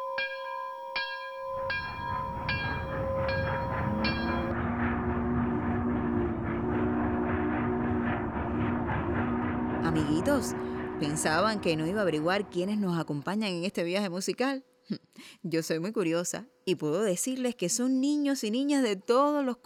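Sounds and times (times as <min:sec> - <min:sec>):
ringing bell chimes: 0:00.0 - 0:04.5
low sustained horn-like tone: 0:00.8 - 0:13.4
departing train rolling rumble: 0:01.5 - 0:12.9
speech: 0:10.3 - 0:19.6.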